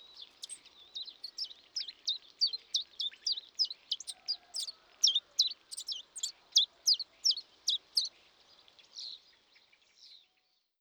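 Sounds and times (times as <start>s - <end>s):
Common Chiffchaff Phylloscopus collybita: 1.2s - 8.1s.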